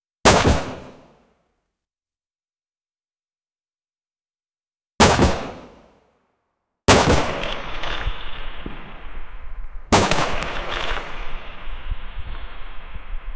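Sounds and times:
AR-15 rifle firing: 0:00.3 - 0:01.0, 0:05.0 - 0:05.8, 0:06.9 - 0:09.2, 0:09.9 - 0:13.0.

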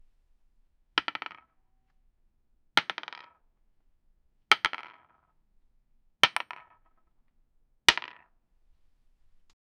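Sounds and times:
heavy dice: 0:01.0 - 0:01.5, 0:02.8 - 0:03.4, 0:04.5 - 0:05.4, 0:06.2 - 0:07.1, 0:07.9 - 0:08.3.

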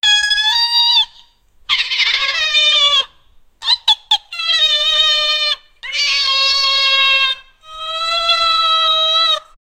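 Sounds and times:
monkey calling: 0:00.0 - 0:09.6.

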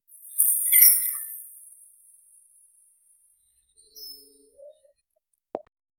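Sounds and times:
magical chime sparkle: 0:00.2 - 0:01.8.

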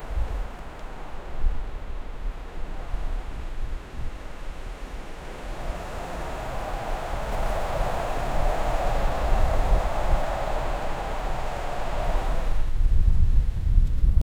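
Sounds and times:
moderate wind gusts: 0:00.0 - 0:14.2.

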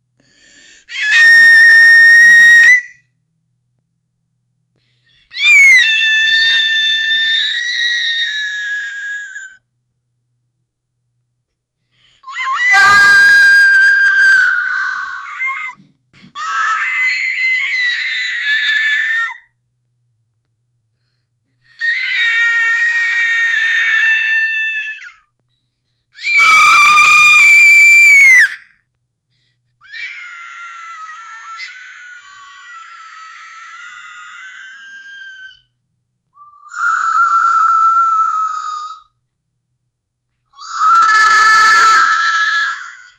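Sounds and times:
high-pitched scream of anguish: 0:00.9 - 0:03.0, 0:05.4 - 0:09.6, 0:12.2 - 0:15.8, 0:16.4 - 0:19.5, 0:21.8 - 0:25.2, 0:26.2 - 0:28.6, 0:29.9 - 0:35.7, 0:36.5 - 0:39.1, 0:40.6 - 0:43.1.

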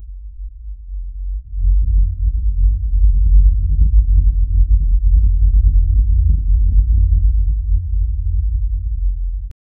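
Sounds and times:
low deep subterranean sound: 0:00.0 - 0:09.6.

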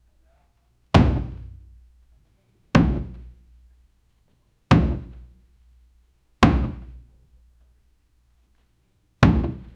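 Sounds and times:
loud heavy hammers striking wood: 0:01.0 - 0:01.6, 0:02.8 - 0:03.3, 0:04.7 - 0:05.2, 0:06.4 - 0:07.0, 0:09.2 - 0:09.7.

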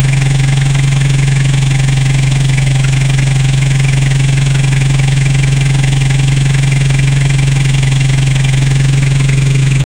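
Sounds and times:
motorcycle engine: 0:00.0 - 0:09.9.

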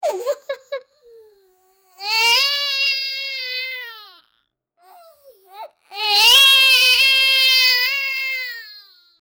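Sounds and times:
unhappy child crying: 0:02.0 - 0:09.2.

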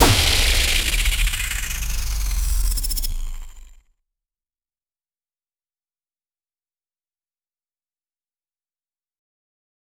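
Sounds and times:
sparkling alien blaster ricochet: 0:00.0 - 0:03.8.

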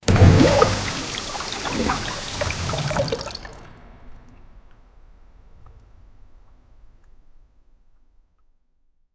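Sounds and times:
water impact splash: 0:00.0 - 0:03.7.

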